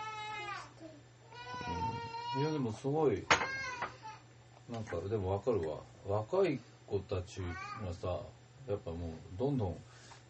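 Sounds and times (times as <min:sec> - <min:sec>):
raccoon crying in whiny calls: 0:00.0 - 0:00.7, 0:01.3 - 0:02.6, 0:03.4 - 0:04.3
speech: 0:02.4 - 0:03.4, 0:04.7 - 0:10.1.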